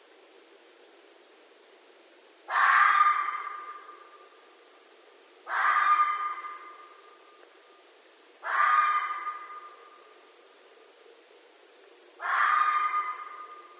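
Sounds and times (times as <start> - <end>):
red fox giving harsh hoarse calls at night: 2.5 - 4.3, 5.4 - 7.2, 8.4 - 10.2, 12.2 - 13.7.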